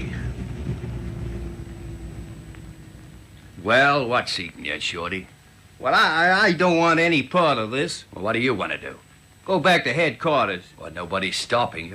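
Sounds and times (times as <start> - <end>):
car engine rumbling as the car pulls to a stop: 0.0 - 4.2
speech: 3.6 - 11.9.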